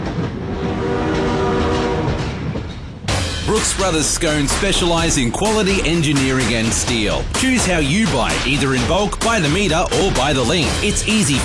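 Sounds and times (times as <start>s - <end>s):
train rumbling past: 0.0s - 11.4s
train horn blast: 0.4s - 2.5s
speech: 3.5s - 11.4s.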